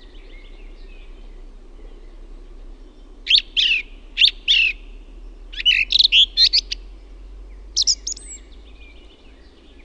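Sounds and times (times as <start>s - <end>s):
song thrush singing: 0.0s - 9.8s.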